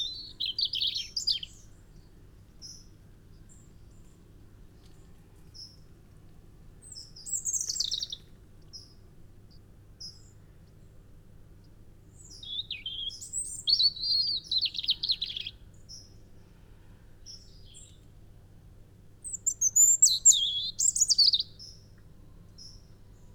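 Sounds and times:
European robin Erithacus rubecula warbled song: 0:00.0 - 0:01.7, 0:06.8 - 0:10.3, 0:12.1 - 0:16.2, 0:19.2 - 0:21.8.

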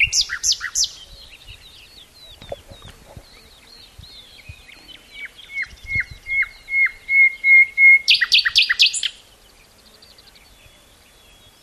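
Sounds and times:
common nightingale Luscinia megarhynchos singing: 0:00.0 - 0:11.6.

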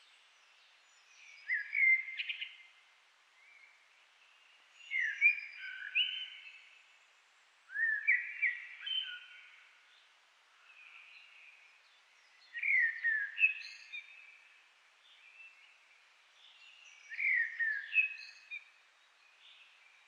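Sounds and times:
common blackbird Turdus merula singing: 0:01.0 - 0:02.7, 0:04.8 - 0:06.7, 0:07.7 - 0:09.7, 0:12.2 - 0:14.4, 0:16.4 - 0:20.0.

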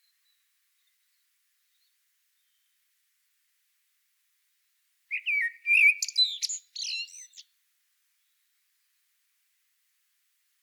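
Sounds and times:
Common blackbird Turdus merula singing: 0:05.1 - 0:07.4.

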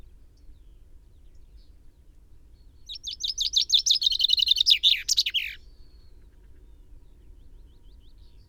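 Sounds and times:
common chaffinch song: 0:02.8 - 0:05.6.

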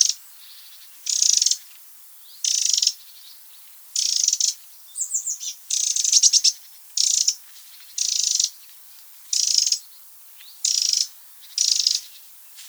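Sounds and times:
Eurasian wren Troglodytes troglodytes churring calls: 0:01.1 - 0:01.6, 0:02.4 - 0:03.0, 0:04.0 - 0:07.4, 0:08.0 - 0:08.6, 0:09.3 - 0:09.9, 0:10.6 - 0:12.1.

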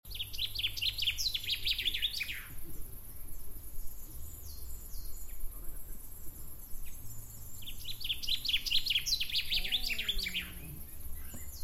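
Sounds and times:
common chaffinch singing descending trilled phrases: 0:00.1 - 0:11.6.

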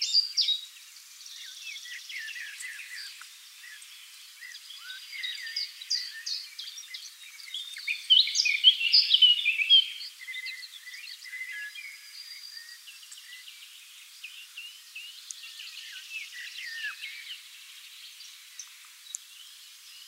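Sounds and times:
Eurasian blackcap warbled and whistled song, Sylvia atricapilla: 0:00.0 - 0:20.0.

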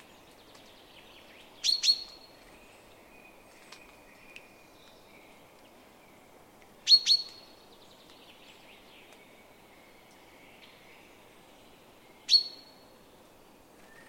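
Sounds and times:
Eurasian wren Troglodytes troglodytes ticking calls: 0:00.4 - 0:02.3, 0:06.8 - 0:08.4.

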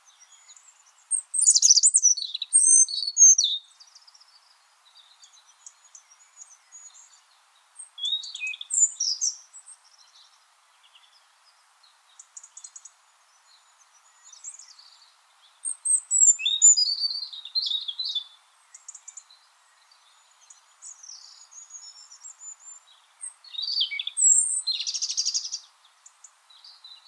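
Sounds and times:
European robin song, Erithacus rubecula: 0:00.0 - 0:27.0.

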